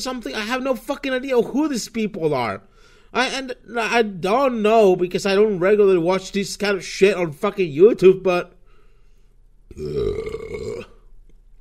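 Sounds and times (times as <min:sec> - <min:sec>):
speech: 0:00.0 - 0:08.6, 0:09.8 - 0:10.9
faint hum: 0:00.0 - 0:11.6
long loud deep gurgling burp: 0:09.7 - 0:11.1.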